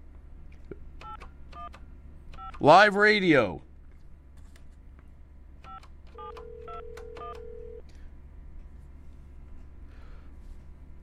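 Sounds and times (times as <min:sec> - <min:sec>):
steady low hum and hiss: 0:00.0 - 0:11.0
speech: 0:02.6 - 0:03.7
telephone keypad tones dialing a number on a live radio call: 0:05.6 - 0:07.8.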